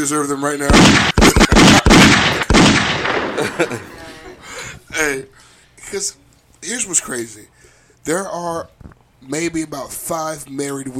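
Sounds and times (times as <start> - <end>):
speech: 0.0 - 1.8, 5.0 - 10.9
booming gunshot sound effects from a soundboard: 0.7 - 3.9
laughter: 1.2 - 4.9.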